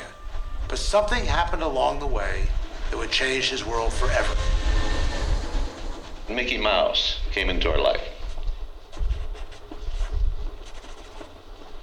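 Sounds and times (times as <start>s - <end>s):
train rumbling along the tracks: 0.0s - 11.8s
speech: 0.7s - 4.6s, 6.3s - 8.1s.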